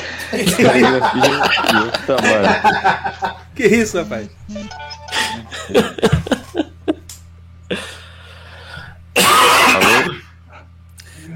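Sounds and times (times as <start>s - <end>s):
laughter: 0.2s - 7.1s
speech: 0.3s - 6.3s
person coughing: 9.2s - 10.3s.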